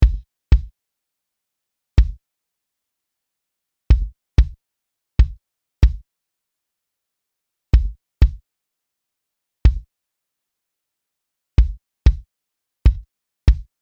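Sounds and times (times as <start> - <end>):
kick drum: 0.0 - 0.7, 2.0 - 2.2, 3.9 - 4.6, 5.2 - 6.0, 7.8 - 8.4, 9.6 - 9.9, 11.6 - 12.3, 12.9 - 13.7.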